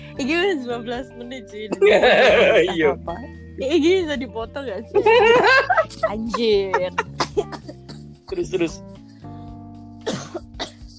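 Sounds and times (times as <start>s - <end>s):
speech: 0.2s - 7.6s, 8.3s - 8.9s
laughter: 1.7s - 3.0s, 5.0s - 9.1s
person coughing into a microphone: 6.9s - 8.9s, 10.0s - 10.9s.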